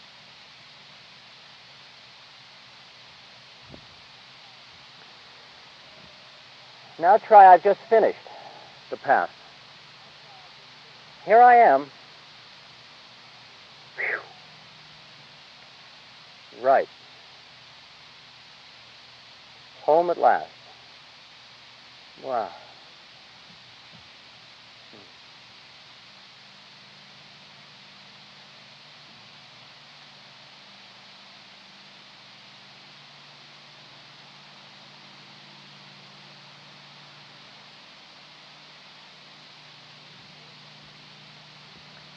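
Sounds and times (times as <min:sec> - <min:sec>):
distant motorboat engines droning: 0:00.0 - 0:42.1
soft outdoor hiss: 0:00.0 - 0:42.1
speech: 0:07.0 - 0:08.3, 0:08.9 - 0:09.4, 0:11.2 - 0:12.0, 0:16.7 - 0:17.0, 0:19.9 - 0:20.6, 0:22.2 - 0:22.6.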